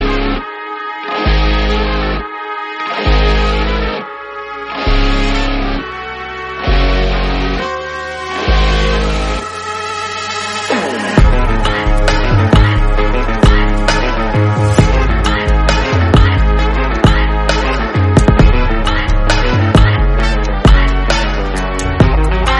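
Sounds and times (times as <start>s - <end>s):
Tamil theme ringtone melody: 0.0s - 22.5s.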